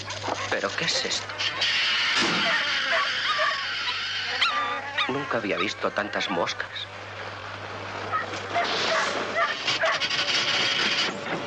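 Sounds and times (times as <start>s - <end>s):
several dogs whimpering, yipping and barking while being given electric shocks: 0.0s - 6.5s, 8.1s - 10.6s
speech: 0.5s - 2.6s, 5.1s - 6.9s.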